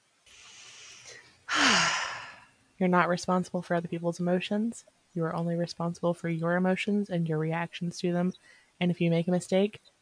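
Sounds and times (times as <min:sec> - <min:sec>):
person taking a deep breath with a sigh-like exhale: 0:00.3 - 0:02.5
speech: 0:02.8 - 0:09.9.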